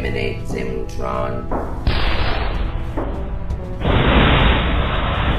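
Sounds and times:
speech: 0.1s - 1.9s
explosive grenade blasts launched by a robot: 1.9s - 2.8s, 3.8s - 5.3s.

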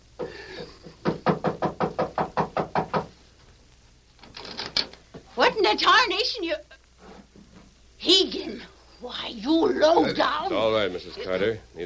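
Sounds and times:
faint noise: 0.0s - 11.8s
firm knocks on a door: 1.0s - 3.1s
speech: 5.7s - 6.6s, 8.0s - 11.8s.

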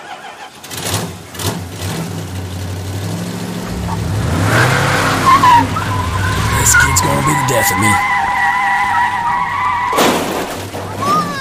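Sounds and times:
video game car engine drone: 1.6s - 9.9s
video game car tire squeal from skidding: 3.6s - 11.3s
speech: 7.6s - 8.1s.

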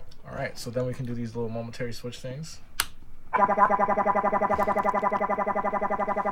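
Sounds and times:
speech: 0.5s - 2.7s, 3.4s - 6.3s
circuit-bent baby toy piano glitching into buzzy electronic tone: 3.3s - 6.3s.

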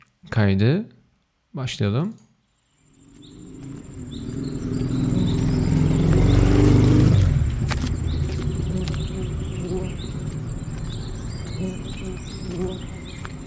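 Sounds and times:
speech: 0.3s - 2.2s
constant high insect-like whine: 2.5s - 13.4s
bee buzzing: 2.7s - 13.4s
motor rumbling past: 2.8s - 13.4s
soft footsteps: 7.0s - 13.4s.

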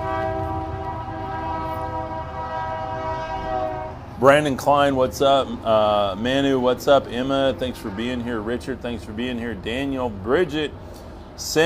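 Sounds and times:
train horn blaring: 0.0s - 4.9s, 5.5s - 10.0s
passing train rumble: 0.0s - 11.6s
speech: 4.2s - 11.6s.

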